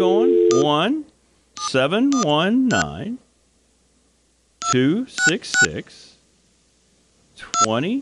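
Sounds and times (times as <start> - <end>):
touch-tone beeps of a telephone number being dialed: 0.0 - 0.7
speech: 1.6 - 3.2, 4.7 - 6.1, 7.4 - 8.0.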